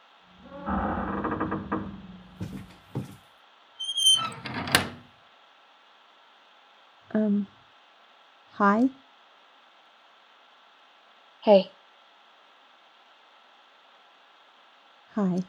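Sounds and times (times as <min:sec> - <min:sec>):
clunks: 0:00.4 - 0:03.2
door creaking open on squeaky hinges: 0:00.4 - 0:03.2, 0:03.8 - 0:05.1
speech: 0:07.2 - 0:07.6, 0:08.6 - 0:09.0, 0:11.4 - 0:11.8, 0:15.2 - 0:15.4.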